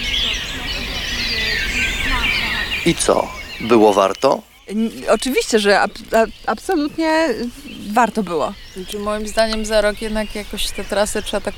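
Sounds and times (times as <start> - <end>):
European robin singing at dawn: 0.0 - 11.5
speech: 2.8 - 11.5.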